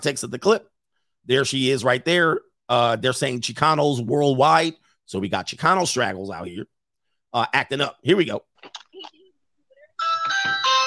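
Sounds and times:
speech: 0.0s - 6.7s, 7.3s - 9.2s
electronic doorbell chime from a video clip: 10.0s - 10.8s.

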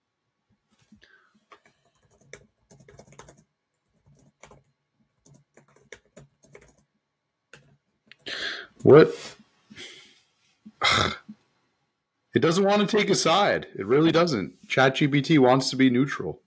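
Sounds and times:
typing on a computer keyboard: 0.9s - 6.9s, 7.5s - 8.3s
speech: 8.3s - 9.4s, 12.4s - 16.4s.

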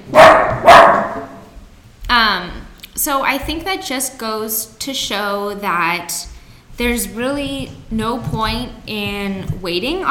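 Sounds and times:
dog barking: 0.0s - 1.4s
speech: 3.0s - 10.0s.

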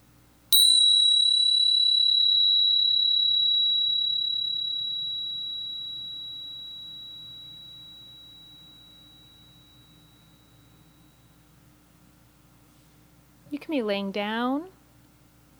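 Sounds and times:
low hum: 0.0s - 15.5s
single clear bell strike: 0.6s - 11.4s
speech: 13.6s - 14.8s.

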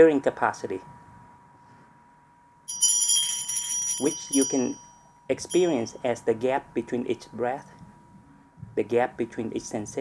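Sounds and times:
speech: 0.0s - 1.0s, 4.0s - 7.8s, 8.8s - 9.9s
bell ringing with bright high metallic tones: 2.7s - 6.0s.

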